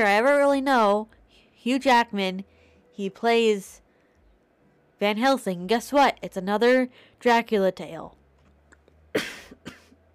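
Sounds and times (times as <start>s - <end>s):
speech: 0.0s - 3.8s, 5.0s - 8.2s, 9.2s - 9.4s
harsh raspy coughs: 9.1s - 10.0s.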